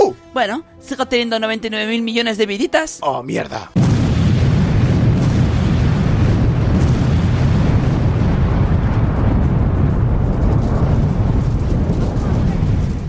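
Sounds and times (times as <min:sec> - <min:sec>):
speech: 0:00.4 - 0:03.8
bomb explosion with low rumbling roar: 0:03.8 - 0:13.0.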